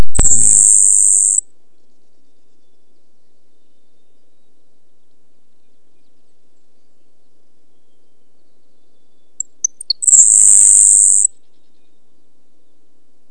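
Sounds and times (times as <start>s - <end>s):
grasshopper sparrow: 0.1s - 1.4s, 8.9s - 11.9s.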